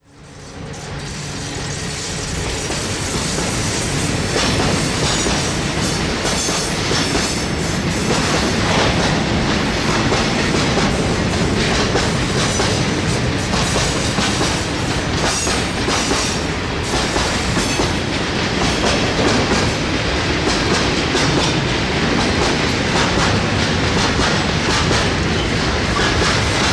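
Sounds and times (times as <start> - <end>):
rail joint noise: 0.0 - 26.7.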